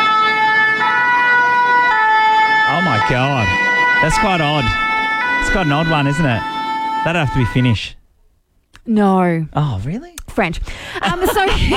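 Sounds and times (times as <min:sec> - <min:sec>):
loud emergency vehicle siren: 0:00.0 - 0:08.0
speech: 0:03.1 - 0:04.8, 0:05.4 - 0:08.0, 0:08.8 - 0:11.7
laughter: 0:10.8 - 0:11.7.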